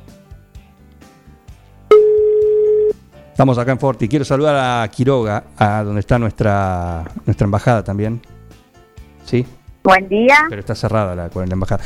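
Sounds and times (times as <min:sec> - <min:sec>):
telephone ringback tone on an outgoing call: 0:01.9 - 0:03.0
speech: 0:03.4 - 0:08.3, 0:09.3 - 0:11.8.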